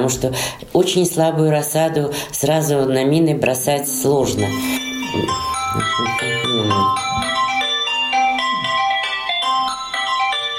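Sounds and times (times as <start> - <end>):
speech: 0.0 - 7.4
phone electronic ringtone for an incoming call: 3.9 - 10.5.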